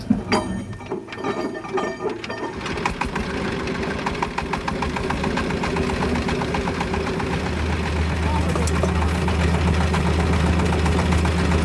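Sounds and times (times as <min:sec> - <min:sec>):
old hand-cranked engine starting and chugging at idle: 0:00.0 - 0:11.6.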